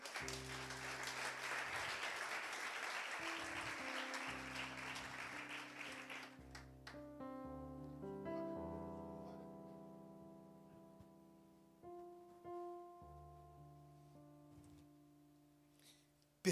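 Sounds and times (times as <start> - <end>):
sustained keyboard or organ chords: 0.0 - 2.2, 3.1 - 15.8
large audience applauding: 0.0 - 7.0
speech: 0.2 - 0.6.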